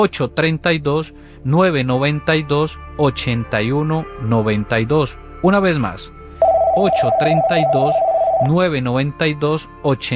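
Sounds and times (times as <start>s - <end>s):
speech: 0.0s - 6.2s, 6.8s - 10.1s
telephone ringing with an incoming call: 6.4s - 8.6s.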